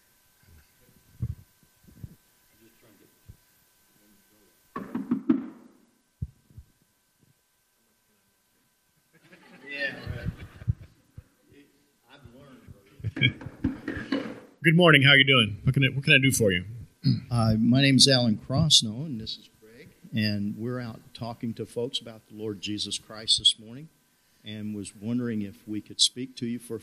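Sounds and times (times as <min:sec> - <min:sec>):
sharp knocks on a house door: 0:04.8 - 0:05.6
laughter: 0:09.1 - 0:11.0, 0:12.9 - 0:14.3
speech: 0:14.6 - 0:19.5, 0:20.1 - 0:26.8.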